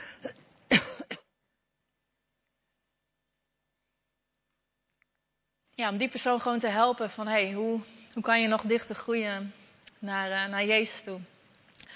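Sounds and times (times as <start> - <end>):
person clearing throat and coughing from a tickle in the throat: 0.0 - 1.4
speech: 5.8 - 11.3.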